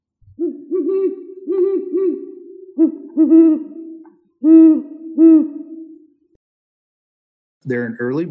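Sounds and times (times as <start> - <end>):
great horned owl giving deep resonant hoots: 0.3 - 6.2
speech: 2.8 - 3.8, 4.4 - 5.6, 7.7 - 8.2.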